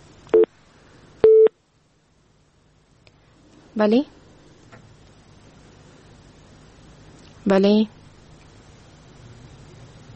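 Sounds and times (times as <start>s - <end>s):
phone busy tone beeps after a call is cut off: 1.2s - 1.5s
speech: 3.8s - 4.2s, 7.5s - 8.0s.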